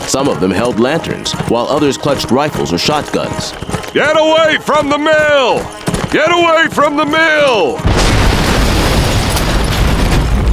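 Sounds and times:
speech: 0.1s - 7.9s
explosion blast at a mine stamp mill: 7.8s - 10.5s.

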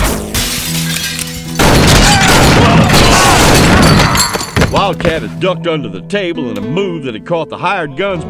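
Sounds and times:
gunshots in a saloon shootout: 0.9s - 4.2s
speech: 4.8s - 8.2s.

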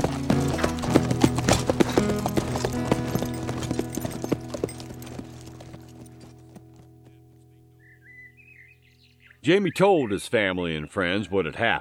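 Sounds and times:
ridden horse hooves clip-clopping: 0.0s - 7.5s
speech: 9.5s - 11.7s.

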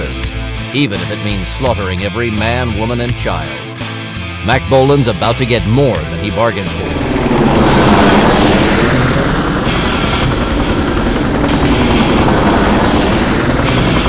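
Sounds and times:
helicopter rotor chopping low over water: 0.0s - 14.0s
speech: 0.7s - 7.8s
helicopter engine whine: 5.1s - 14.0s.

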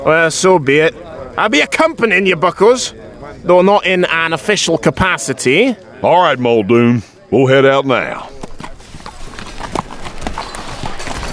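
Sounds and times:
speech: 0.0s - 8.4s
steady noise: 0.0s - 11.3s
horses trotting up to a tie rail, hooves clip-clopping: 8.1s - 11.3s.

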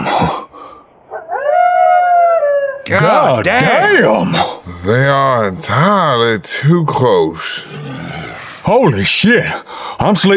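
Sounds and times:
wolf howling: 1.1s - 2.9s
speech: 2.9s - 10.3s.

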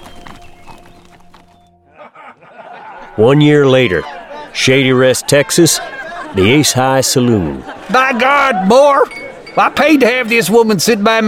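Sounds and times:
hooves of two ridden horses walking slowly: 0.0s - 1.8s
laughter: 1.8s - 9.2s
speech: 3.2s - 11.2s.

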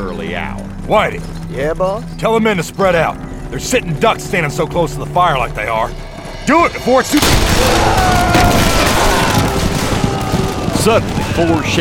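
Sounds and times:
speech: 0.0s - 8.4s, 10.8s - 11.8s
gunfire from several handguns in an ambush: 7.1s - 11.8s.

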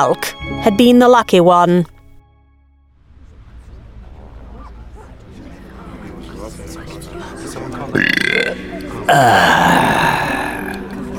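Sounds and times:
speech: 0.0s - 1.9s, 7.9s - 9.9s
loud belches in a cavern: 7.9s - 11.0s.

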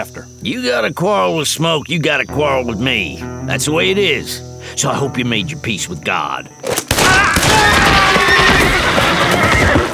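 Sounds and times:
speech: 0.0s - 7.9s
frightened horses neighing and whinnying shrilly: 7.3s - 9.9s.

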